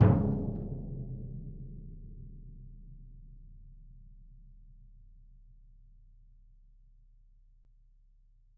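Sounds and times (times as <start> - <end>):
bass drum hit: 0.0 - 1.9.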